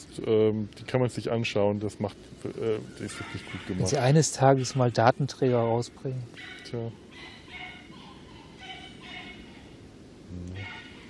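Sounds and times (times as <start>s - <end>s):
speech: 0.2s - 7.4s
several dogs barking and yipping: 2.9s - 9.8s, 10.6s - 11.0s.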